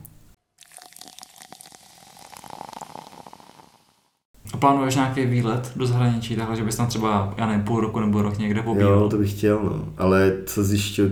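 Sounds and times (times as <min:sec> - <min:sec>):
drink pouring into a glass: 0:00.6 - 0:03.7
speech: 0:04.6 - 0:11.1.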